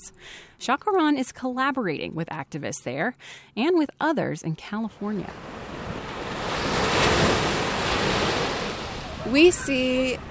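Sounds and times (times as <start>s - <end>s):
speech: 0.0s - 5.6s, 9.3s - 10.2s
ocean waves washing against the shore: 5.0s - 10.2s.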